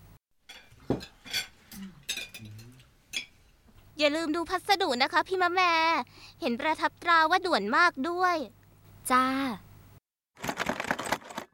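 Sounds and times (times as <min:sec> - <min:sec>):
dishes and cutlery clinking while being gathered up: 0:00.5 - 0:03.5
speech: 0:00.9 - 0:01.2, 0:04.0 - 0:09.6.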